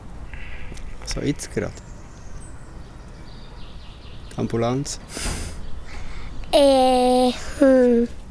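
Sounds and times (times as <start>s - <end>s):
speech: 1.1s - 1.9s, 4.4s - 5.4s, 6.5s - 8.2s
short high bird chirps: 1.7s - 6.3s.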